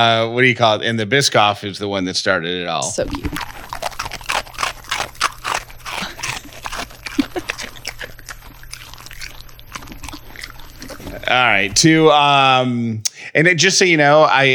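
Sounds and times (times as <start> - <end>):
speech: 0.0 - 3.8, 11.3 - 14.5
low hum: 0.0 - 14.5
dog crunching on dry food: 2.9 - 12.3.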